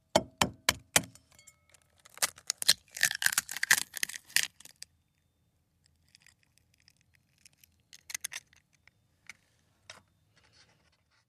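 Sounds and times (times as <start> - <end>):
egg cracking into a bowl in a kitchen: 1.7 - 4.8, 5.9 - 8.8.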